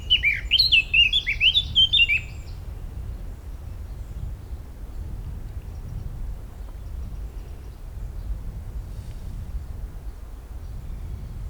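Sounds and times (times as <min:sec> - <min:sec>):
Eurasian blackcap Sylvia atricapilla singing: 0:00.0 - 0:02.6.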